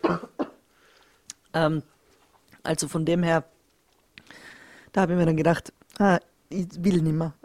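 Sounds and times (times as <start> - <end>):
slightly unwell person coughing: 0.0 - 0.6
speech: 0.1 - 0.3, 1.5 - 2.0, 2.6 - 3.5, 5.0 - 7.4.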